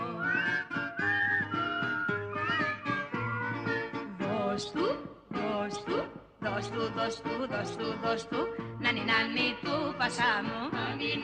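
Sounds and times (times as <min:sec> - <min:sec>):
cheerful human whistling a bright wavering melody: 0:00.0 - 0:02.9
steady bouncy musical accompaniment: 0:00.0 - 0:11.2
speech: 0:04.6 - 0:04.8, 0:06.6 - 0:11.2.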